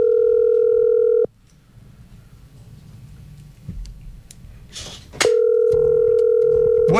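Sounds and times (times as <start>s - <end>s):
telephone dial tone while placing a call to Quibdó in the Chocó department: 0.0s - 1.3s, 5.3s - 6.9s.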